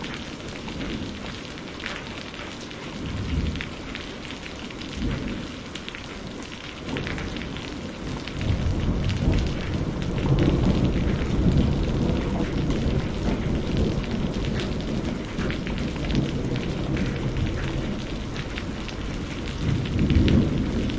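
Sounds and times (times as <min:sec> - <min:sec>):
rain: 0:00.0 - 0:20.9
thunder: 0:06.9 - 0:20.9.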